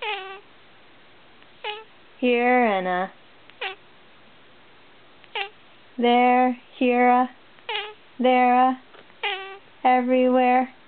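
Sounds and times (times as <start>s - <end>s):
cat meowing in a farm song: 0.0s - 0.5s, 1.6s - 1.9s, 3.6s - 3.8s, 5.3s - 5.6s, 7.7s - 8.0s, 9.2s - 9.6s
faint hiss: 0.0s - 10.8s
speech: 2.2s - 3.2s, 6.0s - 7.4s, 8.2s - 8.8s, 9.8s - 10.8s.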